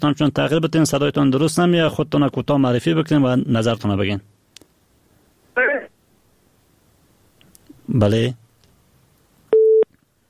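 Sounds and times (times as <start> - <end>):
speech: 0.0 - 4.3, 7.9 - 8.4
telephone busy tone after a call is cut off: 9.5 - 9.9.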